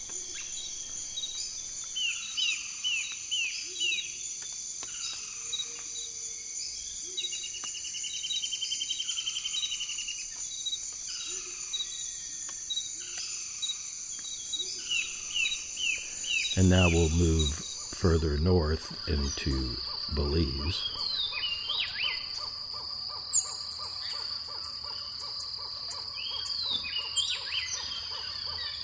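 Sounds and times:
dense chorus of crickets and other insects in Amazon tropical rainforest: 0.0s - 28.8s
chirping bird calls in Amazon tropical rainforest: 14.4s - 22.5s
speech: 16.6s - 21.0s.

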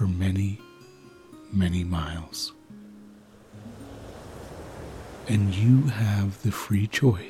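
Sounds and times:
speech: 1.5s - 2.6s, 5.3s - 7.2s
ocean waves washing onto a beach: 3.1s - 7.2s.

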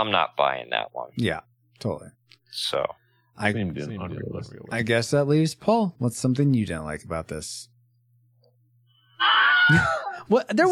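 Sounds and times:
speech: 0.0s - 7.7s, 9.2s - 10.7s
cartoonish scream sound effect: 9.2s - 10.1s.

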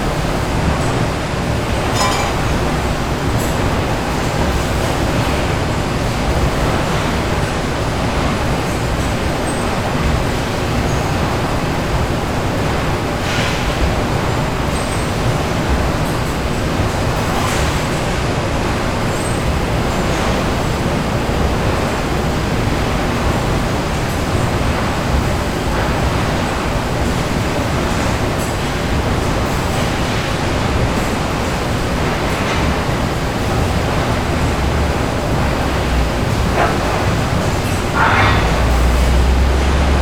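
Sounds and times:
heavy factory activity roar with rattling: 0.0s - 40.0s
sharp clanks and knocks in a factory: 1.8s - 3.7s, 35.4s - 39.9s.

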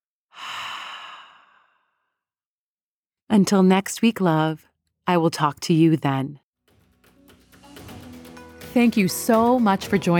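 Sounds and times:
slow breathy exhale during breathing exercise: 0.3s - 2.0s
speech: 3.3s - 6.4s, 8.7s - 10.1s.

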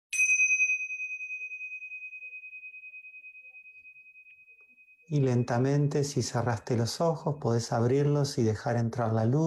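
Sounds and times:
single bell struck during a guided meditation exercise: 0.1s - 8.2s
speech: 5.1s - 9.4s.

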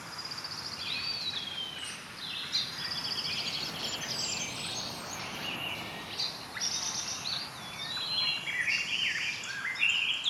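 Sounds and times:
tropical jungle birds chirping and whistling: 0.2s - 10.2s
sea waves: 2.6s - 6.6s.

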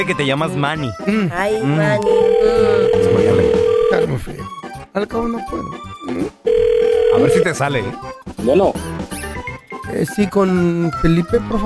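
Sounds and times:
speech: 0.0s - 9.0s, 9.9s - 11.6s
telephone line tone during a call: 2.0s - 4.1s, 6.5s - 7.6s.

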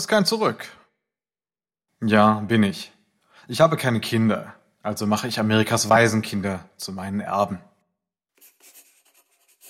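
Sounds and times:
speech: 0.0s - 0.8s, 2.0s - 7.7s
pen scratching across paper signing papers in a lawyer's office: 8.4s - 9.6s.

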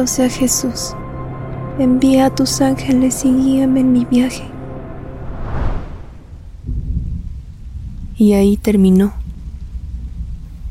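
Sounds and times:
speech: 0.0s - 1.0s, 1.8s - 4.5s, 8.2s - 9.2s
deep rolling thunder rumbling: 5.0s - 8.2s
steady rain outside: 6.4s - 10.6s.

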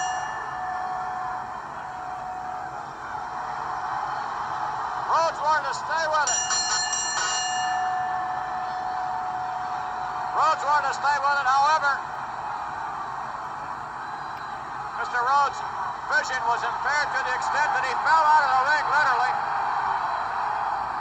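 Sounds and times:
wrestling ring bell clanging at the end of a match: 0.0s - 4.0s, 6.2s - 12.2s
steady wrestling crowd noise: 0.0s - 20.9s
man giving wrestling commentary: 5.1s - 6.3s, 10.4s - 12.0s, 15.0s - 19.4s
speech: 5.4s - 6.6s, 15.2s - 19.6s.

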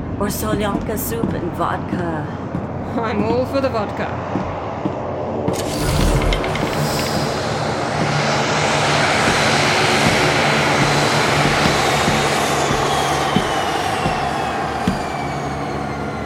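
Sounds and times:
speech: 0.2s - 4.6s
airplane engine roar during landing: 3.8s - 16.2s.

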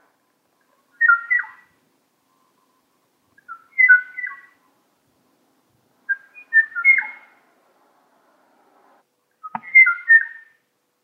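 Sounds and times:
male Kauai o-o bird calling: 0.9s - 1.8s, 3.4s - 4.7s, 6.1s - 7.4s, 9.4s - 10.6s.

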